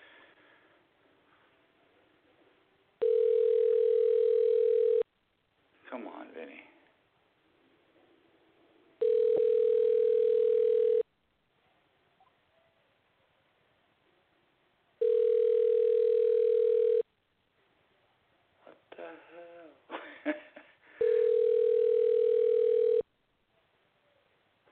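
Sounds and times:
telephone ringback tone while placing a call: 3.0s - 5.0s, 9.0s - 11.0s, 15.0s - 17.0s, 21.0s - 23.0s.

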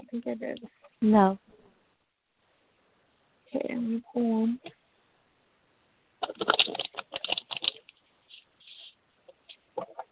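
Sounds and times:
speech: 0.1s - 1.5s, 3.5s - 4.8s, 6.3s - 7.3s
deck of oracle cards being shuffled: 6.2s - 9.0s.

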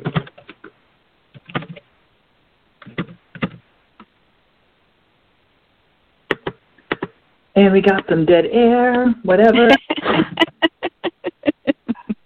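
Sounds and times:
typing on a computer keyboard: 0.0s - 0.7s, 1.3s - 1.8s, 2.8s - 3.6s, 6.3s - 7.2s
speech: 7.6s - 9.8s
laughter: 9.6s - 12.2s.

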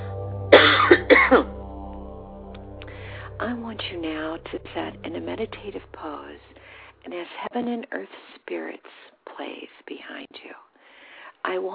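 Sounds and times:
low steady hum: 0.0s - 7.8s
harsh coughs: 0.6s - 1.4s
speech: 3.8s - 10.7s, 11.4s - 11.7s.

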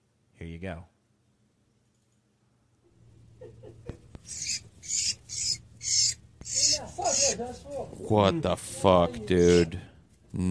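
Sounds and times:
low steady hum: 0.0s - 10.5s
speech: 0.4s - 1.0s, 7.0s - 10.5s
laughter: 3.2s - 4.3s
bird giving harsh high-pitched distress shrieks while attacked by a spider: 4.2s - 7.4s, 9.4s - 9.7s.

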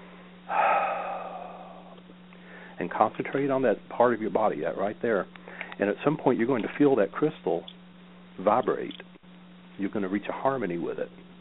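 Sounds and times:
deep breath let out in a slow exhale: 0.0s - 2.8s
faint steady hum: 0.0s - 11.3s
speech: 2.8s - 7.8s, 8.4s - 9.1s, 9.8s - 11.2s.

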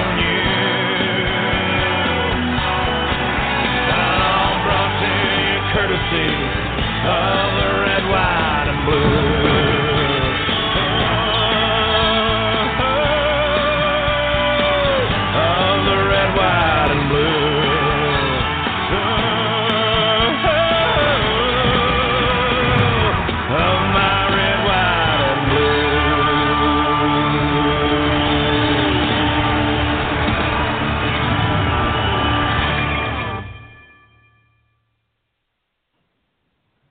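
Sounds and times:
country rock song with guitars, drums and sung vocals: 0.0s - 33.6s.

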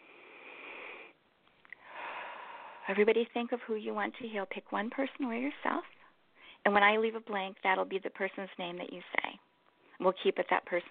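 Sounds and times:
deep breath in through the nose: 0.0s - 1.2s, 1.8s - 2.9s
speech: 2.9s - 6.0s, 6.6s - 9.4s, 10.0s - 10.8s.

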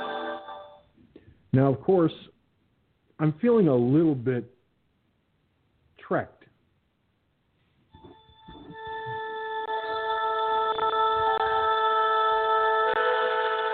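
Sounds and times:
speech: 1.5s - 2.4s, 3.2s - 4.6s, 6.1s - 6.4s
cell phone ringing with electronic ringtone: 8.0s - 13.7s.

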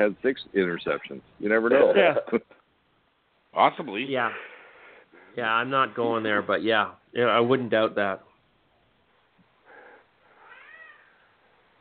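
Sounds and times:
speech: 0.0s - 2.6s, 3.6s - 4.5s, 5.4s - 8.3s
faint hiss: 0.0s - 11.8s
cat meowing: 10.4s - 11.3s.

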